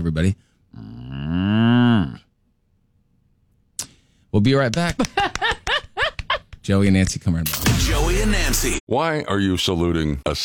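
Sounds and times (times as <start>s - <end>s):
speech: 0.0s - 1.6s, 4.4s - 5.4s, 6.6s - 10.4s
person imitating a cow mooing: 0.8s - 2.3s.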